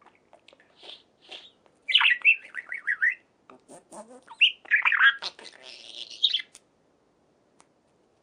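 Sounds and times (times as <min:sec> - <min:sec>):
budgerigar chattering: 0:00.8 - 0:06.5.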